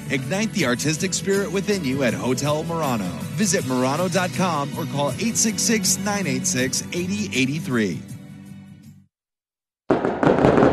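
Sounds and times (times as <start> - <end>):
speech: 0.1 - 8.2
fireworks show grand finale explosions: 9.9 - 10.7.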